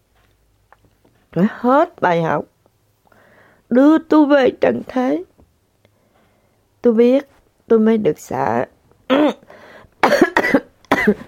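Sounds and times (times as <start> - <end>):
speech: 1.3 - 2.5, 3.7 - 5.3, 6.8 - 9.4, 11.1 - 11.2
person coughing: 9.1 - 11.2.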